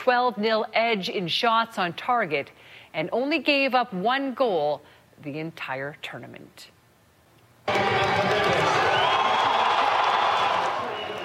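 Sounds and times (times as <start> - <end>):
speech: 0.0 - 6.7
crowd of thousands cheering and shouting at a World Cup final watch party in Calgary: 7.7 - 11.2.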